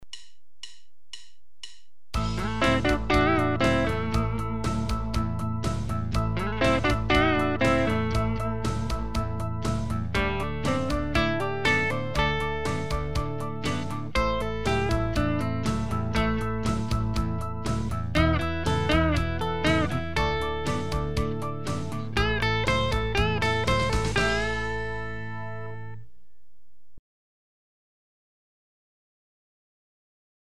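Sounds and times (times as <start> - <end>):
guitar solo: 2.2 - 26.0.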